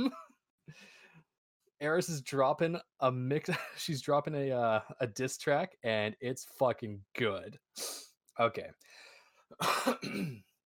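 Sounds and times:
speech: 0.0s - 0.2s, 1.8s - 10.5s
person clearing throat: 9.6s - 10.6s.

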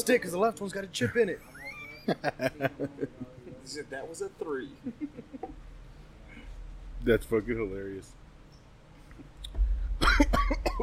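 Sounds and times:
speech: 0.0s - 5.7s, 7.0s - 8.2s
laughter: 1.5s - 3.8s, 4.7s - 5.6s
person coughing after inhaling smoke: 10.0s - 10.8s.

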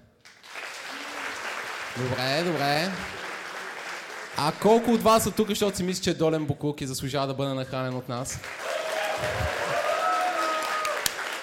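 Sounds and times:
audience applause: 0.2s - 5.9s, 8.4s - 11.4s
speech: 2.0s - 3.2s, 4.4s - 8.6s, 9.2s - 9.7s.

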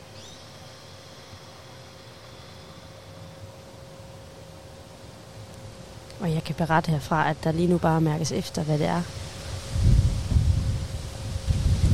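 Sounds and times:
speech: 6.2s - 9.2s
strong wind gusts buffeting the microphone: 8.2s - 11.9s.

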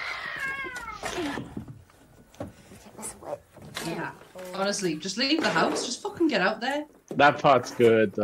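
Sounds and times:
cats caterwauling: 0.0s - 1.5s
speech: 1.2s - 1.6s, 3.3s - 8.2s.

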